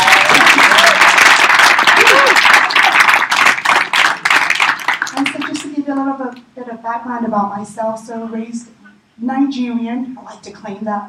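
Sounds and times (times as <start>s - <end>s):
room full of people applauding: 0.0s - 5.6s
speech: 6.8s - 11.0s.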